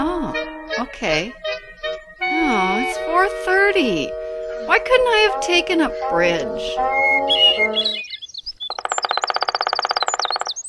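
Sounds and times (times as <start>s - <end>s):
black-backed woodpecker calling: 0.7s - 10.6s
speech: 0.8s - 1.4s, 2.5s - 8.1s.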